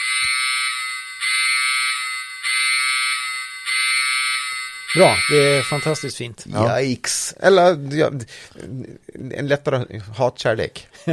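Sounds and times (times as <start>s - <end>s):
electronic alarm signal from a toy sound brick: 0.0s - 6.2s
speech: 4.9s - 11.1s.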